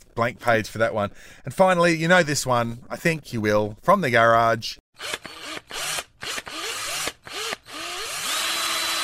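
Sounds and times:
speech: 0.2s - 5.8s
electric drill driving a screw: 5.0s - 9.0s.

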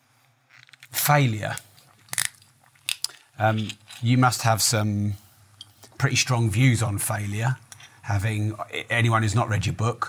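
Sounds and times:
speech: 1.1s - 1.7s, 3.4s - 5.2s, 6.0s - 10.0s
person sipping water: 1.6s - 3.3s.

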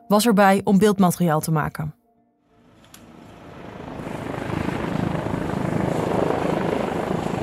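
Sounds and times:
speech: 0.1s - 2.0s
trauma helicopter rotor chop and engine roar arriving at accident scene: 2.6s - 7.4s.

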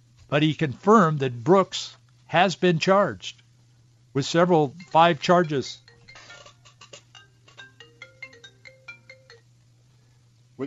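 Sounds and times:
speech: 0.3s - 3.4s, 4.2s - 5.8s
cell phone ringtone in the studio: 4.8s - 9.5s.

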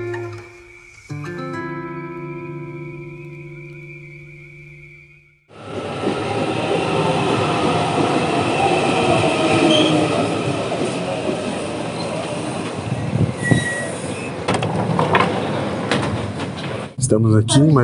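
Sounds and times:
interior rumble of a moving train: 5.6s - 17.1s
faint high train wheel squeals: 8.6s - 10.5s, 11.8s - 15.8s
sharp train clacks and rattles: 14.5s - 16.9s
speech: 17.1s - 17.8s.

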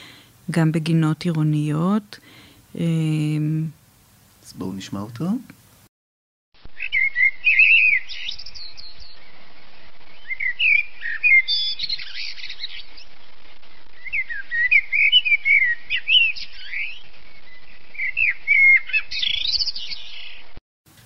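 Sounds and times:
speech: 0.5s - 3.8s, 4.5s - 5.6s
blackbird singing: 6.8s - 9.4s, 10.1s - 13.2s, 14.0s - 20.5s.

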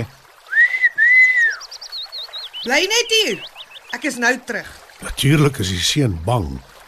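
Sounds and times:
person whistling to call cattle: 0.5s - 1.6s
speech: 2.6s - 6.7s.

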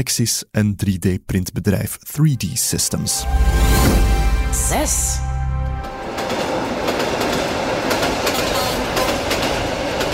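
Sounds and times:
speech: 0.0s - 5.4s
brief tonal hum: 2.7s - 7.0s
train rolling along the rails: 3.9s - 10.1s.

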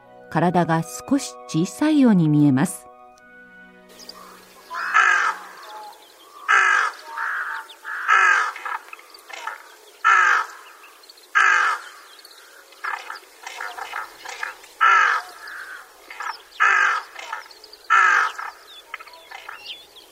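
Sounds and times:
speech: 0.3s - 2.9s
flock of rooks cawing in a winter rice field in Itakura town: 3.9s - 19.8s.

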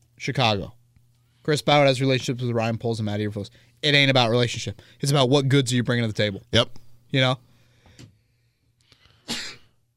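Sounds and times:
speech: 0.2s - 0.8s, 1.5s - 7.5s
person sneezing: 9.2s - 9.8s.

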